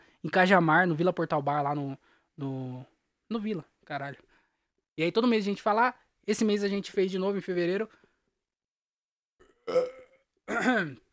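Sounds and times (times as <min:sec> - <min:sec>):
speech: 0:00.2 - 0:04.3, 0:05.0 - 0:08.0, 0:09.7 - 0:11.0
burp: 0:09.4 - 0:11.0
faint throaty sound: 0:09.4 - 0:11.1.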